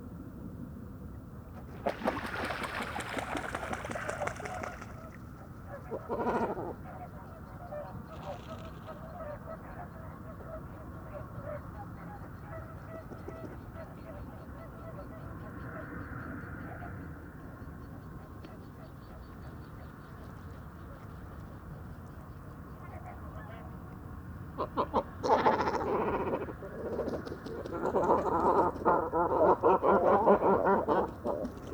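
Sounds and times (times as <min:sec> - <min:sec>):
great cormorants croaking and honking at an evening roost: 0:01.8 - 0:15.3, 0:24.4 - 0:31.7.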